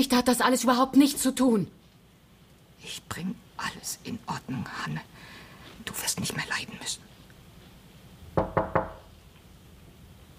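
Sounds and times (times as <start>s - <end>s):
speech: 0.0s - 1.8s, 2.8s - 5.2s, 5.8s - 7.1s
firm knocking on a door: 8.4s - 9.1s.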